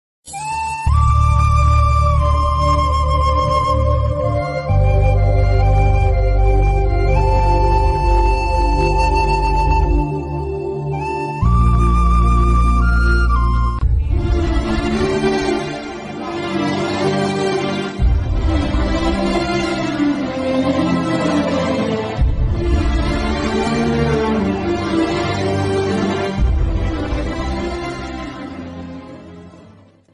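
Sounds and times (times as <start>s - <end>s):
sad emotional background music ringtone: 0.3s - 30.1s.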